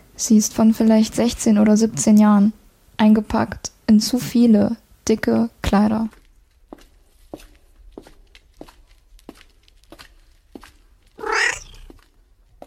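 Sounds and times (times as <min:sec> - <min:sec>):
speech: 0:00.2 - 0:06.2
soft footsteps inside a church during a snowstorm: 0:06.1 - 0:12.6
black tomcat meowing inside a church during a snowstorm: 0:11.2 - 0:11.9.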